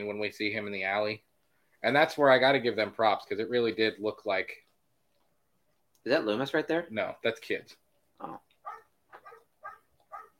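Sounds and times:
speech: 0:00.0 - 0:04.6, 0:06.0 - 0:08.5
dog barking: 0:08.6 - 0:10.3.

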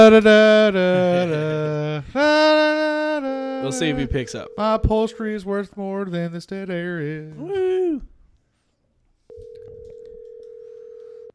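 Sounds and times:
speech: 0:00.0 - 0:08.1
telephone dial tone: 0:09.3 - 0:11.3.

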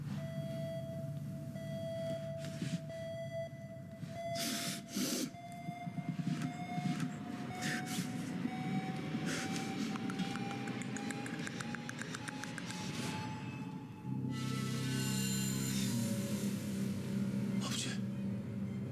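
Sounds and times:
steady piercing alarm tone: 0:00.2 - 0:18.9
loud whooshing breath-like bursts: 0:04.2 - 0:05.4, 0:09.2 - 0:10.0.

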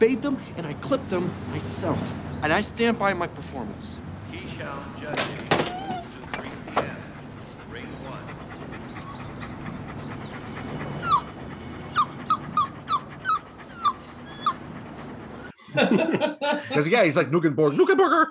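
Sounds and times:
speech: 0:00.0 - 0:04.0, 0:04.6 - 0:05.5, 0:15.8 - 0:18.2
dogs whimpering: 0:04.6 - 0:15.6
laughter: 0:15.6 - 0:17.0.

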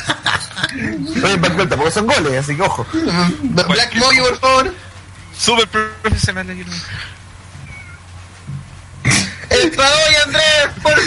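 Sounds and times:
laughter: 0:00.0 - 0:04.9, 0:09.0 - 0:11.0
speech: 0:00.7 - 0:07.2, 0:09.6 - 0:11.0
cat meowing: 0:07.6 - 0:08.1.

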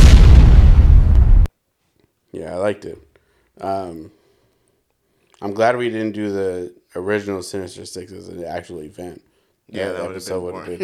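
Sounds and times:
loud explosion with deep rumbling roar: 0:00.0 - 0:01.5
speech: 0:02.4 - 0:04.2, 0:05.4 - 0:10.8.

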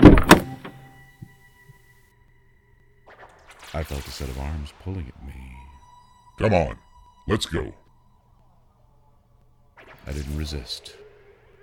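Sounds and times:
car door settling with soft faint thumps: 0:00.0 - 0:00.8
car door opening in a driveway: 0:00.0 - 0:01.0
speech: 0:03.8 - 0:05.6, 0:06.4 - 0:07.8, 0:10.0 - 0:11.0.

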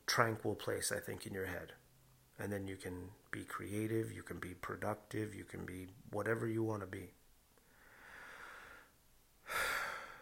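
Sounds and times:
speech: 0:00.2 - 0:01.8, 0:02.4 - 0:07.2
breath: 0:07.6 - 0:10.2.

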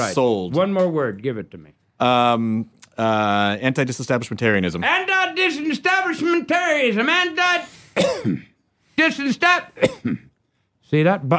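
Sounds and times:
speech: 0:00.0 - 0:10.3, 0:10.9 - 0:11.3
person clearing throat: 0:08.0 - 0:08.6, 0:09.8 - 0:10.4
person coughing: 0:08.0 - 0:08.6, 0:09.8 - 0:10.4.

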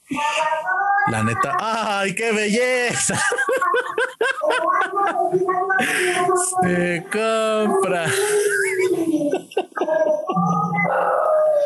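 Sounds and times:
speech: 0:01.1 - 0:09.4
laughter: 0:02.9 - 0:06.2, 0:08.0 - 0:11.1
dog howling: 0:10.7 - 0:11.6.

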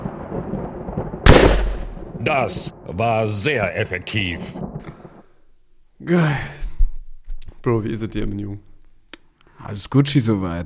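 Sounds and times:
loud electric crackling thunder shock blast effect: 0:00.0 - 0:03.0
speech: 0:02.2 - 0:04.9, 0:06.0 - 0:06.6, 0:07.6 - 0:08.7, 0:09.6 - 0:10.6.

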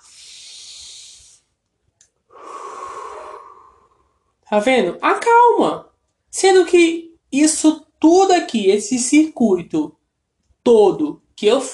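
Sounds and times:
long audible exhale: 0:00.0 - 0:01.5, 0:02.3 - 0:04.2
slow deep inhale: 0:00.0 - 0:01.6, 0:02.3 - 0:04.3
speech: 0:04.5 - 0:10.0, 0:10.6 - 0:11.7.

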